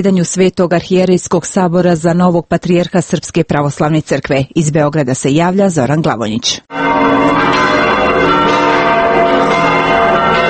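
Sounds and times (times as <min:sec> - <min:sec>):
speech: 0:00.0 - 0:08.4
large bells of the Cathedral Church in Belgrade pealing: 0:06.7 - 0:10.4.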